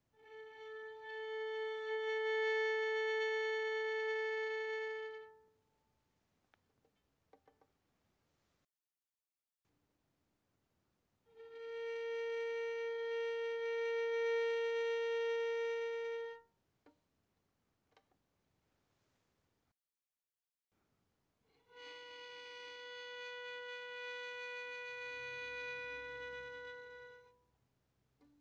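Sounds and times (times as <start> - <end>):
violin bowed very softly on the A string: 0.1 - 5.5, 11.3 - 16.5, 21.5 - 27.4.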